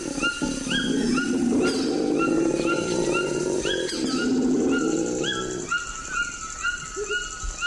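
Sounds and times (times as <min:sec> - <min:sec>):
howler monkey growling in the Amazon: 0:00.0 - 0:05.9
bird calls chirping in the Amazon: 0:00.0 - 0:07.6.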